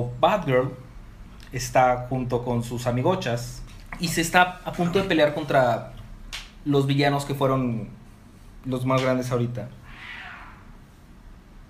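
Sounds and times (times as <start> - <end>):
speech: 0.0 - 0.8, 1.5 - 6.0, 6.6 - 8.0, 8.6 - 9.8
steady low noise: 0.0 - 11.6
cat meowing: 9.8 - 10.8.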